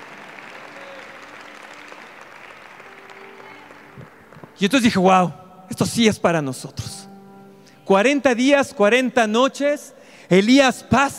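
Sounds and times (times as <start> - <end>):
audience applauding: 0.0 - 5.0
speech: 4.6 - 7.0, 7.9 - 11.1.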